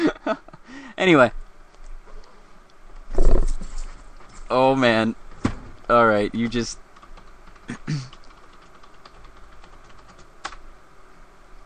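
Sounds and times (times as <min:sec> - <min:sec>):
steady low hum: 0:00.0 - 0:11.6
speech: 0:01.0 - 0:01.4, 0:04.5 - 0:05.2, 0:05.9 - 0:06.8, 0:07.7 - 0:08.1
typing on a computer keyboard: 0:06.9 - 0:10.6.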